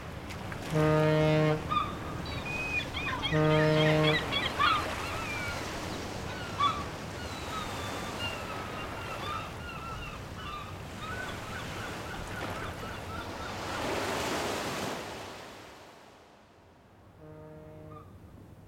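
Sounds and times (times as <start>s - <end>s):
ocean surf washing along the shore: 0.0s - 16.5s
faint bird calls: 1.5s - 13.9s, 17.7s - 18.2s.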